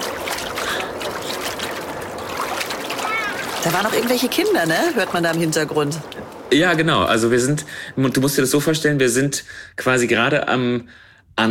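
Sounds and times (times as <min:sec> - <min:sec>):
water swirling in a gold panning dish on a river beach: 0:00.0 - 0:07.6
speech: 0:03.6 - 0:11.4.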